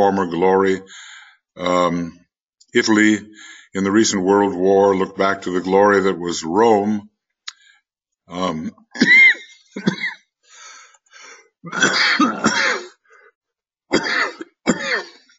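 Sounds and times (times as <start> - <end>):
speech: 0.0 - 7.1, 8.3 - 9.2, 11.6 - 12.6
rough throat clearing: 8.4 - 10.2, 11.7 - 13.0
person having a loud coughing fit: 9.0 - 10.2, 11.7 - 13.0, 13.9 - 15.3.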